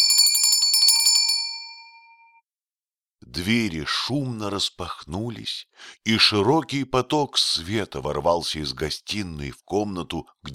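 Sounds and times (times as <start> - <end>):
small silver bell ringing: 0.0 - 2.4
speech: 3.4 - 10.5.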